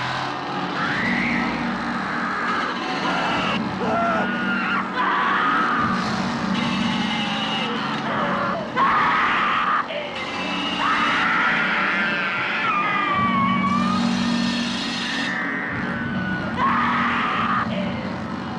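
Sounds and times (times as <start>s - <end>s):
continuous roar of engine-like noise: 0.0s - 18.5s
woman screaming in terror in a horror film scene: 3.8s - 6.0s, 8.1s - 10.0s, 10.6s - 14.2s, 15.3s - 17.9s.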